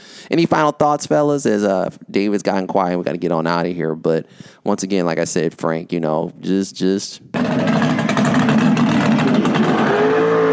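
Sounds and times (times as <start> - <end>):
speech: 0.3 - 8.2
muscle car engine with lumpy loping cam idle and raised rev: 7.4 - 10.4.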